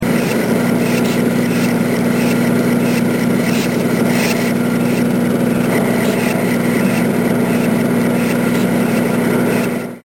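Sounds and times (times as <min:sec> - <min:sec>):
machine hum: 0:00.0 - 0:10.0.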